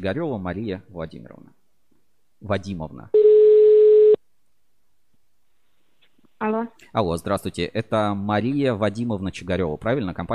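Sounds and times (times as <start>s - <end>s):
speech: 0.0s - 1.5s, 2.4s - 3.2s, 6.4s - 10.3s
telephone line tone after dialing a number: 3.2s - 4.2s.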